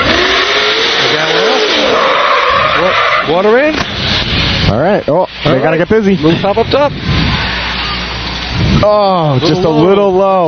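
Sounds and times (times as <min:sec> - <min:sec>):
fire truck engine running hard pulling in to a fire scene: 0:00.0 - 0:10.4
speech: 0:03.4 - 0:03.7, 0:05.0 - 0:07.3, 0:08.6 - 0:10.4.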